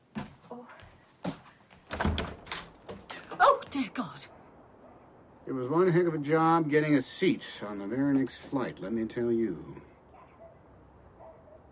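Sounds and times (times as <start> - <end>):
door being handled with wooden knocks and clunks: 1.8 - 3.8
speech: 3.8 - 4.4, 5.5 - 9.9.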